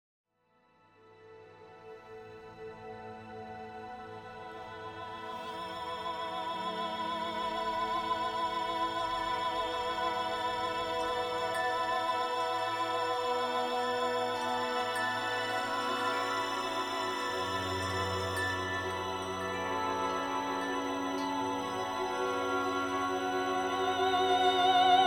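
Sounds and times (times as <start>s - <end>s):
female choir: 3.3s - 25.0s.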